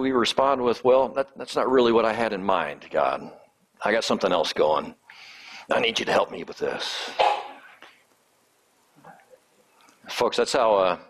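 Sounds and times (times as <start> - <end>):
speech: 0.0 - 7.3, 10.1 - 11.0
faint sneeze during a church sermon: 7.1 - 7.8.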